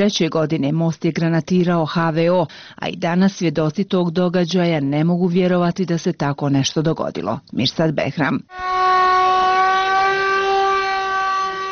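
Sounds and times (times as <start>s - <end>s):
speech: 0.0s - 8.8s
general danger warning siren in Mostar on the Old Bridge anniversary: 8.5s - 11.7s.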